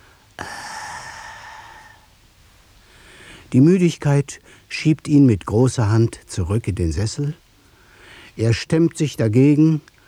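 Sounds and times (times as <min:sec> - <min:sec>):
man exhaling steam and groaning after drinking tea: 0:00.4 - 0:02.0
speech: 0:03.5 - 0:07.4, 0:08.4 - 0:09.9.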